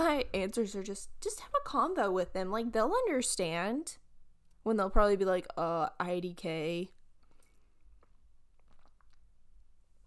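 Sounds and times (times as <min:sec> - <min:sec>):
speech: 0:00.2 - 0:04.0, 0:04.6 - 0:07.0
wet mouth clicks: 0:07.2 - 0:09.4
sipping coffee: 0:07.2 - 0:09.5.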